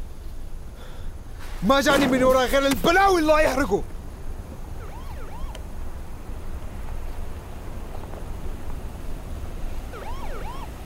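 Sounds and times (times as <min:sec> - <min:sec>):
speech: 0:01.6 - 0:03.9
siren wailing: 0:04.7 - 0:05.6, 0:09.9 - 0:10.8.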